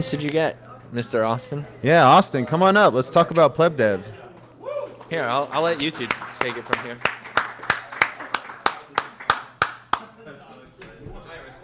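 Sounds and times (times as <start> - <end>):
speech: 0.0 - 4.2, 5.1 - 7.2
hands clapping: 4.4 - 10.1.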